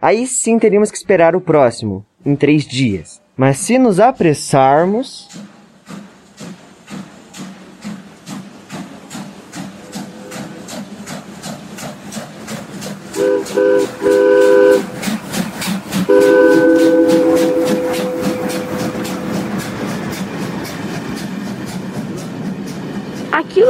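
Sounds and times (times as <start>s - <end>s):
speech: 0.0s - 6.0s
train rumbling past: 3.7s - 23.6s
train wheels clacking over rails: 5.2s - 23.6s
train horn blasts: 13.2s - 14.9s, 16.1s - 19.5s.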